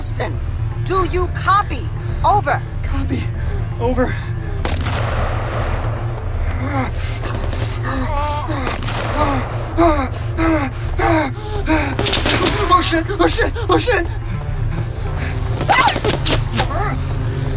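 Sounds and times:
speech: 0.2 - 4.3, 6.6 - 14.2
gunfire as covering fire in combat: 4.6 - 6.2, 7.2 - 7.9, 8.6 - 9.7, 11.9 - 12.9
person gasping and straining: 6.4 - 17.2.

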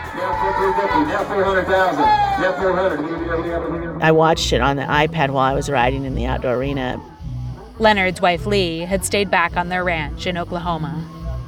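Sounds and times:
auction crowd hollering and bidding: 0.0 - 7.2
speech: 0.2 - 7.1, 7.8 - 11.2.

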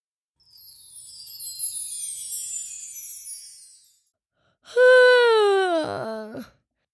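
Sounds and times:
person yawning: 4.7 - 6.5.

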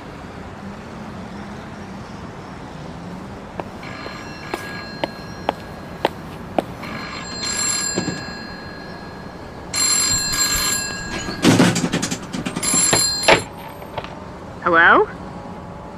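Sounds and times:
old telephone bell ringing: 3.8 - 13.9.

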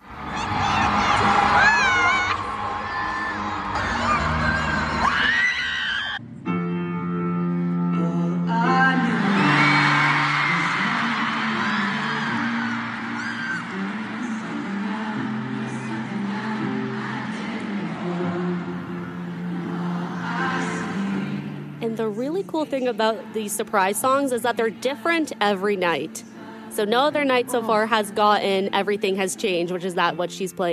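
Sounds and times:
mass of voices singing along in an arena: 0.0 - 5.5, 8.0 - 30.2
large concert crowd screaming: 0.0 - 6.2, 8.9 - 21.6
concert music: 0.0 - 30.7
speech: 22.5 - 30.7.

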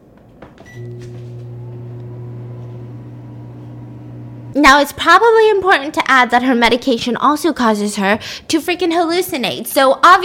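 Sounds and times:
microwave oven running with a steady electrical hum: 0.6 - 4.7
speech: 0.8 - 1.4, 4.5 - 10.2.

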